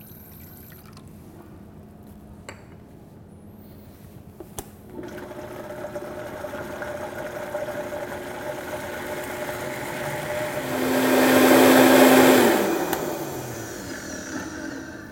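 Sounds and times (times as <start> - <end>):
blender pureeing thick avocado dressing with Dijon mustard and water: 4.9 - 15.0.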